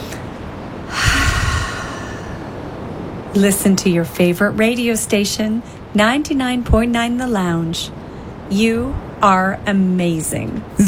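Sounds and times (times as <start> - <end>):
slow deep breath during a relaxation moment: 0.9 - 2.7
speech: 3.4 - 10.8.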